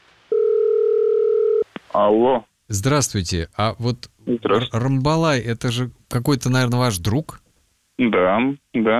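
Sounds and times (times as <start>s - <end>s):
steady loud telephone dial tone: 0.3s - 1.7s
speech: 2.0s - 7.4s, 8.0s - 8.9s.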